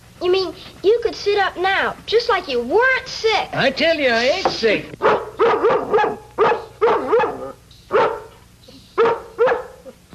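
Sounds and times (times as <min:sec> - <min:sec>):
speech: 0:00.2 - 0:05.8
dog barking in short loud bursts: 0:05.0 - 0:08.4, 0:09.0 - 0:10.1.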